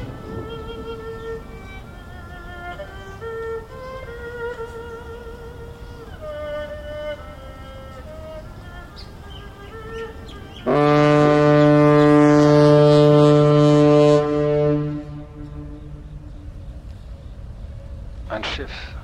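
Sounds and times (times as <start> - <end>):
ship's horn blast from a passing ship: 0.0 - 2.8, 9.6 - 16.8
low rumble: 0.0 - 19.0.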